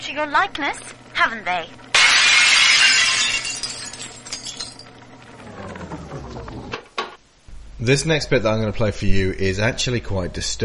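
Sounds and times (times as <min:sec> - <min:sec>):
speech: 0:00.1 - 0:01.9, 0:07.8 - 0:10.6
large handcrafted stained glass window shattering: 0:02.0 - 0:04.9
stained glass shards falling and clinking: 0:02.0 - 0:04.9.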